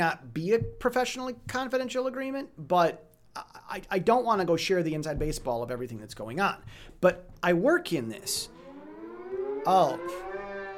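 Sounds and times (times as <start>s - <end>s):
speech: 0.0s - 8.6s, 9.6s - 10.3s
civil defense siren for emergency war and disaster alarms in Taiwan: 8.2s - 10.7s.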